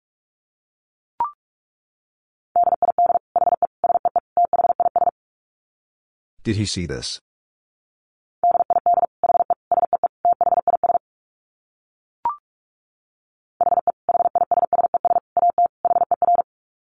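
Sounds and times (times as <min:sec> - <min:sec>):
very fast Morse code beeps at 45 words per minute: 0:02.6 - 0:05.1, 0:08.4 - 0:11.0, 0:13.6 - 0:16.5
speech: 0:06.4 - 0:07.3.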